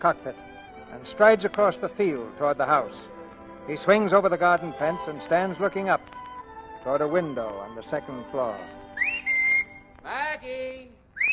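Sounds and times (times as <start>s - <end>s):
speech: 0.0s - 6.2s, 6.8s - 8.8s, 10.0s - 11.0s
man whistling a call: 8.8s - 9.9s.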